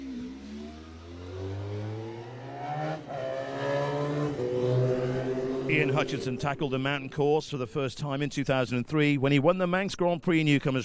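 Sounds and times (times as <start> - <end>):
factory racing motorcycle engine buzzing at a road-racing event: 0.0 - 6.6
speech: 5.7 - 10.8.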